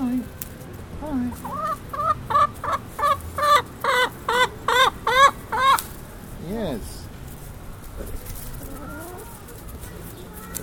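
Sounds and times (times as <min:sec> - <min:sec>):
steady outdoor hum: 0:00.0 - 0:10.6
speech: 0:01.2 - 0:01.6
chickens clucking: 0:01.3 - 0:06.1, 0:07.8 - 0:10.6.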